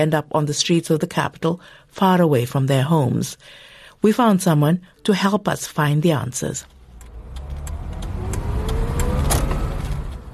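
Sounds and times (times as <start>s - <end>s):
speech: 0.0s - 6.8s
car engine rumbling pulling into a petrol station in Kampala Uganda: 6.6s - 10.3s.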